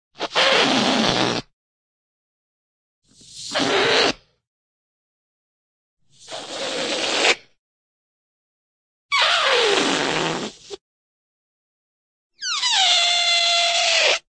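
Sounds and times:
cartoon balloon air squeak: 0:00.2 - 0:01.5, 0:03.1 - 0:04.4, 0:06.2 - 0:07.5, 0:09.1 - 0:10.8, 0:12.4 - 0:14.3.

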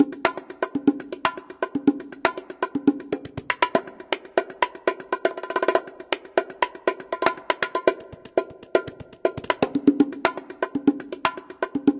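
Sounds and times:
taunting bongo music: 0:00.0 - 0:11.9.

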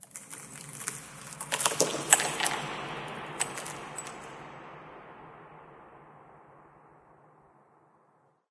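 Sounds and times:
rock debris ambience for video games: 0:00.0 - 0:06.7.

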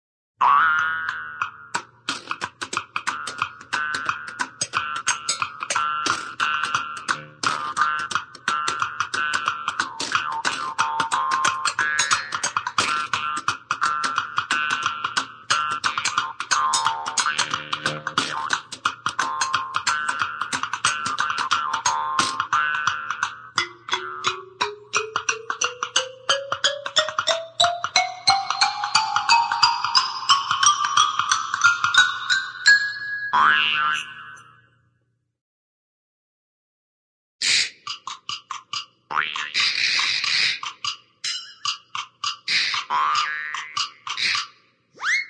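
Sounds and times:
percussion: 0:00.4 - 0:34.5, 0:37.4 - 0:44.6
cartoon music: 0:03.3 - 0:14.7, 0:15.6 - 0:34.4, 0:41.2 - 0:41.8.

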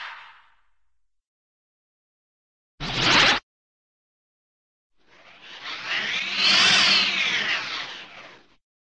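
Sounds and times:
cartoon sci-fi falling spacey swoosh: 0:02.8 - 0:03.4, 0:05.1 - 0:08.5
cartoon sci-fi rising spacey swoosh: 0:05.1 - 0:08.5.

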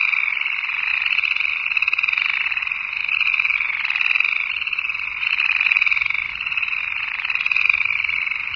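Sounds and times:
swamp frogs in canals: 0:00.0 - 0:08.5.

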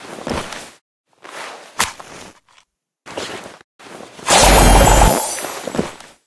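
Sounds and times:
video game gas blast: 0:04.3 - 0:05.5.

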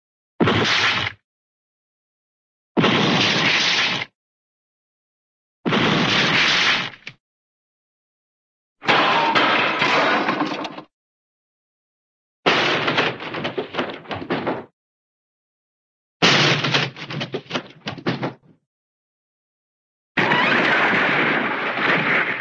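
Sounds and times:
cartoon crash with wood crunch: 0:00.4 - 0:01.2, 0:02.8 - 0:04.1, 0:05.7 - 0:07.1, 0:08.8 - 0:10.9, 0:12.5 - 0:14.7, 0:16.2 - 0:18.4, 0:20.2 - 0:22.4.

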